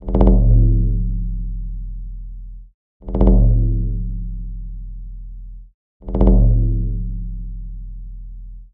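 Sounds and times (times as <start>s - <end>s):
shaman drum ringtone: 0.0s - 2.2s, 3.0s - 5.1s, 6.0s - 8.1s.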